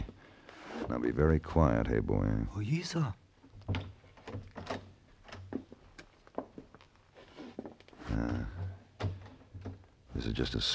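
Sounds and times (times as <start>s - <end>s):
speech: 0.9s - 3.9s, 10.3s - 10.7s
door creaking as it swings: 3.5s - 6.6s, 7.4s - 9.9s.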